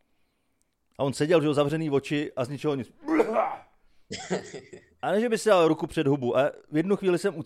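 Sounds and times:
speech: 1.0s - 7.4s
man's voice imitating a man clearing his throat: 3.0s - 4.9s.

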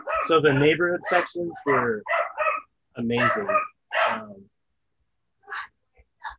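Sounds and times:
dog barking excitedly: 0.0s - 0.4s, 1.0s - 4.4s, 5.4s - 6.3s
speech: 0.2s - 2.2s, 3.0s - 4.5s.

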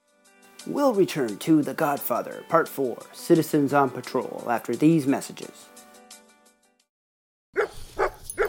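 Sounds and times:
speech: 0.7s - 5.7s
dog barking: 7.6s - 8.4s.

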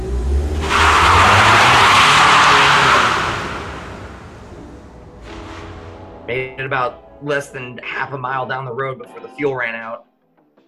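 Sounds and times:
car engine starting up and roaring: 0.0s - 7.7s
speech: 6.6s - 10.1s.

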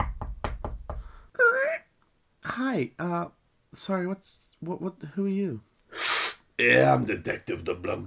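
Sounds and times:
firm hollow knocks on the door of a house: 0.0s - 1.2s
speech: 2.6s - 5.7s, 6.6s - 8.0s.

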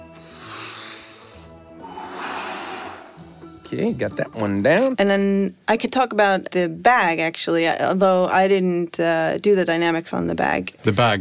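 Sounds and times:
person breathing in: 0.1s - 3.4s
speech: 3.7s - 11.1s.

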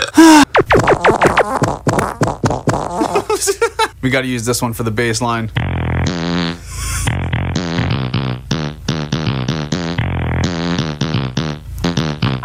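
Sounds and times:
loud splattery farts: 0.5s - 3.2s, 5.6s - 12.4s
speech: 4.0s - 6.9s.

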